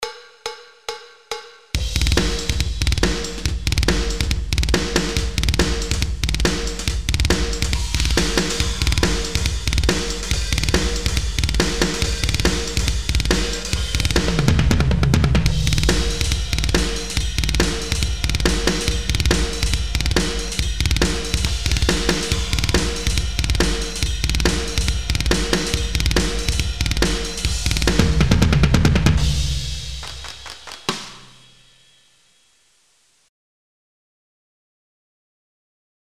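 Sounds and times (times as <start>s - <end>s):
drums on old tape: 0.0s - 33.3s.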